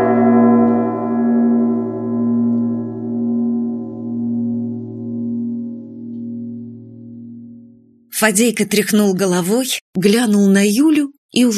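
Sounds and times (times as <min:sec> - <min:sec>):
deep church bell ringing: 0:00.0 - 0:08.1
speech: 0:08.2 - 0:11.5.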